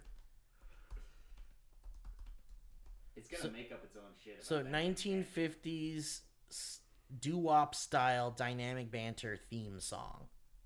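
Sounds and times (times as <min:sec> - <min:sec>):
typing on a computer keyboard: 0:00.0 - 0:03.0
speech: 0:03.2 - 0:10.4.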